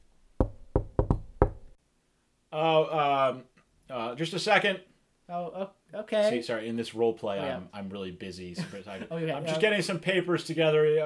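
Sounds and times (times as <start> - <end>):
firm knocking on a door: 0.4 - 1.8
speech: 2.5 - 11.0.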